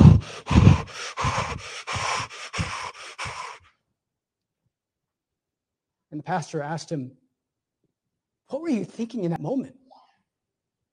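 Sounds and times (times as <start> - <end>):
voice imitating a pilot's heavy rapid breathing: 0.0 - 3.7
speech: 6.2 - 7.2, 8.7 - 9.8.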